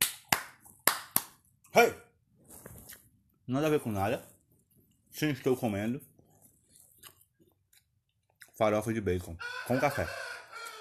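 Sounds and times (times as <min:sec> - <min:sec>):
speech: 0:01.8 - 0:02.0, 0:03.5 - 0:04.3, 0:05.2 - 0:06.1, 0:08.6 - 0:10.2
rooster clucking: 0:09.4 - 0:10.7.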